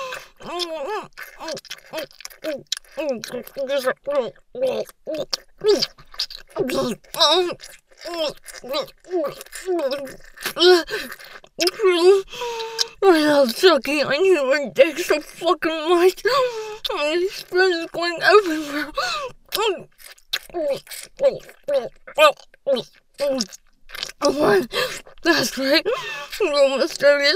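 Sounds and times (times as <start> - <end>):
person panting and moaning erotically: 0.0 - 0.6, 24.3 - 26.4
speech: 0.5 - 27.3.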